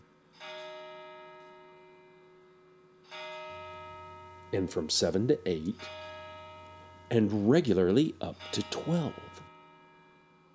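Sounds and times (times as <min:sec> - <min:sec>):
heavy bell striking the hours: 0:03.6 - 0:09.4
speech: 0:04.5 - 0:06.0, 0:07.1 - 0:09.5.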